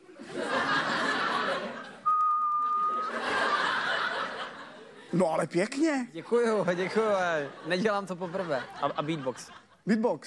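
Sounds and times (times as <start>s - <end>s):
laughter: 0.0s - 2.1s, 2.7s - 5.4s, 6.4s - 10.2s
person whistling a steady clear note: 2.0s - 3.2s
speech: 5.1s - 10.2s.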